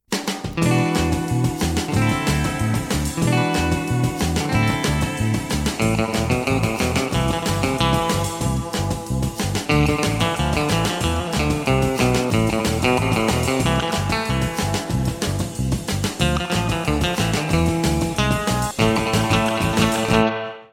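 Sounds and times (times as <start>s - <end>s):
electric guitar: 0.2s - 20.7s.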